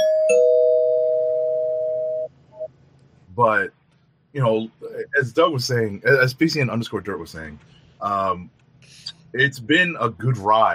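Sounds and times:
spoiler bell ringing: 0.0 - 2.3
speech: 3.4 - 3.8, 4.4 - 10.7.

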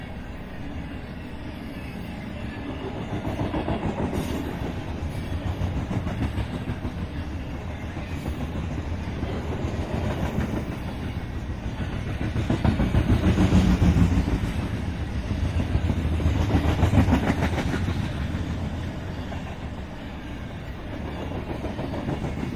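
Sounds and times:
freight train rolling past: 0.0 - 22.5.

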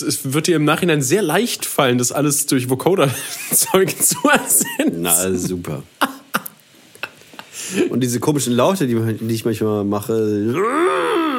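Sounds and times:
speech: 0.0 - 6.2, 7.7 - 11.2
laughter: 3.0 - 7.9
person coughing: 3.9 - 5.5
soft breathy exhale: 7.5 - 7.9.

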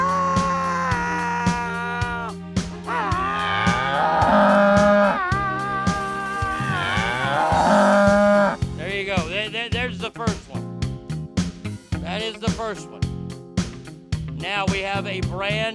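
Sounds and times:
steady regular rhythmic beat: 0.0 - 15.7
cow mooing: 3.0 - 5.7, 6.6 - 8.6.

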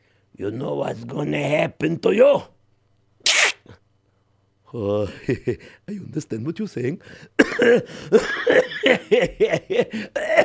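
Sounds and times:
speech: 0.4 - 2.6, 4.7 - 10.4
person coughing and laughing with wheezy raspy bursts: 7.4 - 10.4.

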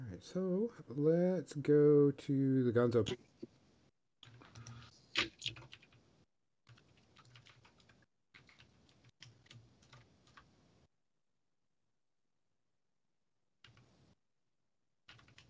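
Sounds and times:
speech: 0.1 - 3.3
loud computer keyboard typing: 4.2 - 6.0, 6.7 - 10.5, 13.6 - 13.9, 15.1 - 15.4.

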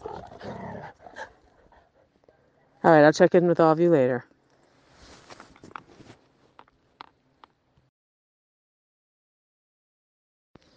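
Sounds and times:
dogs fighting with faint harsh snarls and growls in a rural area: 0.0 - 2.0
speech: 2.8 - 4.3.

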